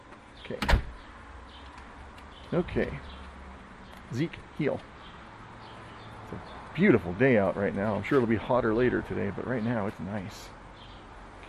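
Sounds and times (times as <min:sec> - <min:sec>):
speech: 0:00.5 - 0:00.8, 0:02.5 - 0:03.1, 0:04.1 - 0:04.9, 0:06.3 - 0:10.6
door being shut and locked: 0:00.6 - 0:01.0
door latch rattling: 0:00.6 - 0:01.0.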